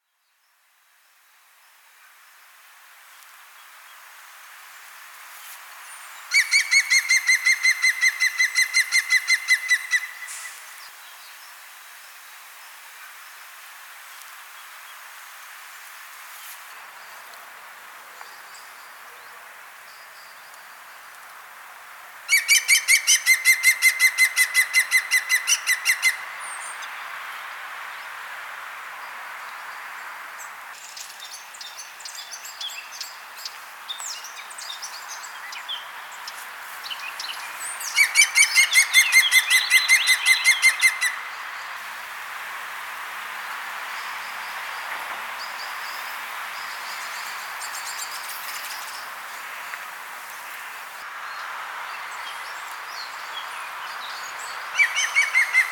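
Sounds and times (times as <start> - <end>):
green woodpecker calling: 6.3 - 10.6, 22.3 - 26.3, 37.8 - 41.3, 54.8 - 55.7.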